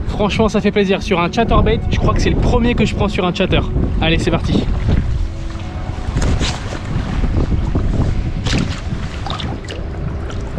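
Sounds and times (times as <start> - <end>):
wind gusts across open water: 0.0 - 10.5
speech: 0.2 - 5.0
faint water splashes against a boat hull: 4.6 - 10.5.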